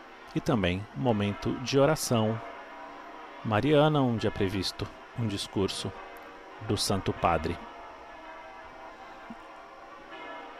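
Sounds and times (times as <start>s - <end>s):
cathedral church bells ringing: 0.0s - 10.5s
speech: 0.4s - 2.5s, 3.4s - 6.0s, 6.6s - 7.7s.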